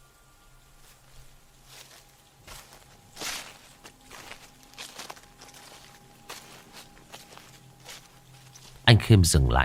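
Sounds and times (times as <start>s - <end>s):
footsteps pacing on sand and gravel outside a wooden door: 0.8s - 8.9s
speech: 9.1s - 9.6s.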